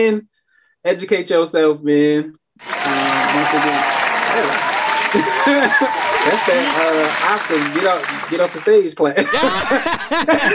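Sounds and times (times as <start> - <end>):
speech: 0.0 - 10.5
group clapping to usher someone off stage: 2.6 - 10.5
voices talking and chuckling loudly: 9.2 - 10.5.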